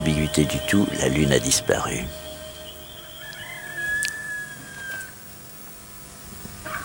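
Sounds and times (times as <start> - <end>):
faint hum: 0.0 - 6.8
speech: 0.2 - 2.2
rooster crowing: 2.1 - 5.4.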